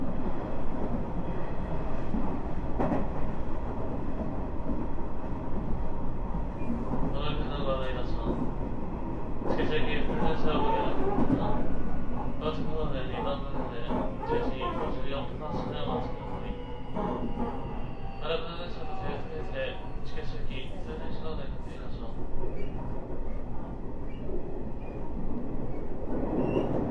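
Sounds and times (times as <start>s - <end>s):
Nishitetsu 9000 series express electric train wheels and motor rumbling: 0.0s - 26.9s
quiet voices inside an express train: 9.4s - 22.5s
bright whining tones and squeals of an express electric train: 13.0s - 25.0s.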